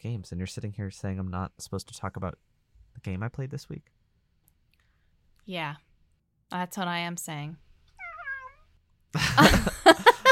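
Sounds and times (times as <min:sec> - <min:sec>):
speech: 0:00.0 - 0:04.0, 0:05.5 - 0:05.9, 0:06.5 - 0:07.6, 0:09.1 - 0:10.0
cat meowing: 0:08.0 - 0:08.7
laughter: 0:09.2 - 0:10.3.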